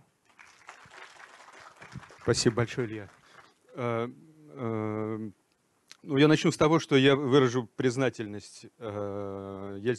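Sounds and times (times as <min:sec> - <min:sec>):
room full of people applauding: 0:00.3 - 0:03.6
speech: 0:02.3 - 0:03.2, 0:03.8 - 0:05.4, 0:06.0 - 0:09.9.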